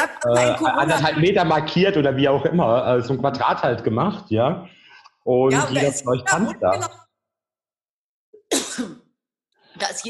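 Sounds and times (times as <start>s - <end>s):
laughter: 0.0s - 4.5s
speech: 0.0s - 7.0s, 9.8s - 10.0s
person coughing after choking: 8.4s - 9.1s.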